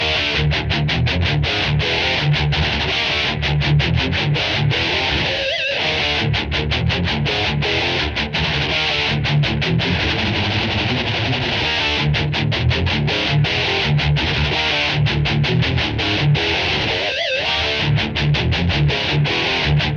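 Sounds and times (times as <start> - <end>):
guitar loop without drums: 0.0 - 19.9.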